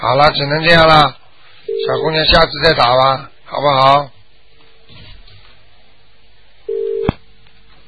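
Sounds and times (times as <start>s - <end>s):
speech: 0.0s - 1.2s, 1.8s - 4.2s
mid-pitched tone on a faulty telephone call: 1.7s - 2.2s, 6.7s - 7.1s.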